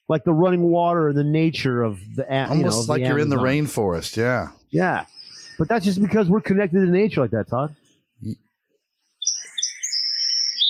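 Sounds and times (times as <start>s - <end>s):
speech: 0.1s - 8.4s
parrots chirping and whistling in a house: 5.0s - 6.0s, 9.2s - 10.6s.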